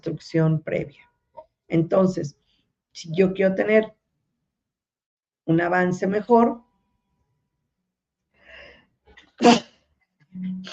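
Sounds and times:
speech: 0.0s - 1.1s, 1.7s - 2.4s, 3.0s - 4.0s, 5.5s - 6.7s, 9.4s - 9.6s, 10.4s - 10.7s
person sneezing: 9.4s - 9.8s.

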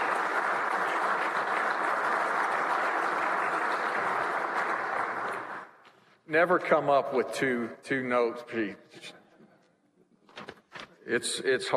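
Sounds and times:
large crowd applause: 0.0s - 5.8s
speech: 6.3s - 9.2s, 11.1s - 11.7s.

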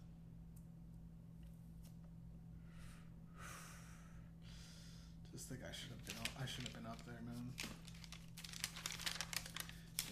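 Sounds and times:
steady low electrical hum: 0.0s - 10.0s
speech: 5.4s - 7.9s
paper crinkling and rustling as it is handled: 5.9s - 10.0s.

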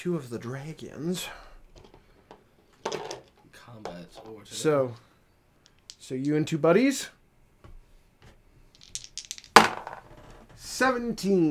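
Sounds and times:
speech: 0.0s - 1.5s, 3.7s - 5.1s, 6.0s - 7.2s, 10.6s - 11.4s
dice clattering on a hard tabletop: 1.6s - 4.7s, 5.6s - 6.6s, 7.7s - 10.7s.

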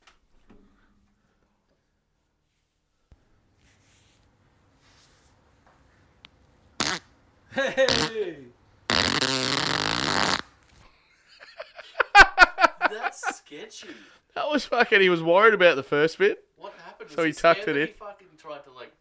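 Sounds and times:
recorded fart: 6.8s - 7.1s, 7.9s - 8.2s, 8.9s - 10.6s
laughter: 7.5s - 8.2s, 11.1s - 13.8s
speech: 7.6s - 8.6s, 13.6s - 16.5s, 17.1s - 18.0s.

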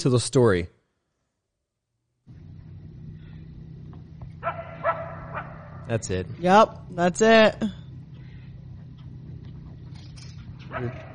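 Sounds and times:
speech: 0.0s - 0.8s, 5.9s - 7.8s, 10.8s - 11.1s
steady low rumble: 2.3s - 11.1s
animal barking sharply and yelping at night: 3.0s - 6.2s, 8.1s - 11.1s.

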